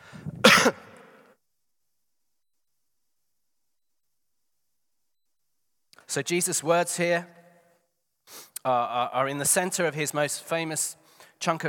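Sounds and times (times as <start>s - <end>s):
faint trailing breath: 0.0s - 0.4s, 11.0s - 11.4s
person coughing: 0.4s - 1.3s
speech: 6.1s - 7.4s, 8.6s - 11.6s.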